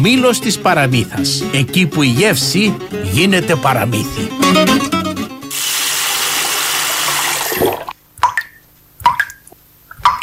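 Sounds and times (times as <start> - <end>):
speech: 0.0 - 5.7
water gushing from a tap: 5.5 - 8.0
drips plopping into a basin: 8.2 - 10.2.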